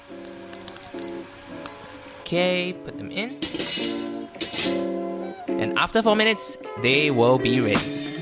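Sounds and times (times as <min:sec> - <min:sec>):
kitchen timer beeps: 0:00.2 - 0:01.8
speech: 0:02.3 - 0:04.0, 0:04.6 - 0:04.9, 0:05.6 - 0:08.0.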